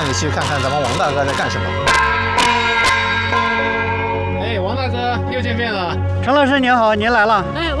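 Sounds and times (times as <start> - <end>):
gong struck to scare off raptors: 0.0 - 6.3
speech: 0.2 - 3.8, 4.8 - 7.7.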